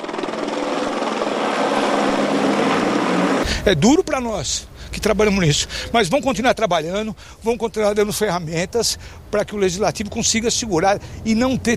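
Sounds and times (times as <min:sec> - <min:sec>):
police helicopter rotor chopping overhead: 0:00.0 - 0:03.6
speech: 0:03.6 - 0:11.7.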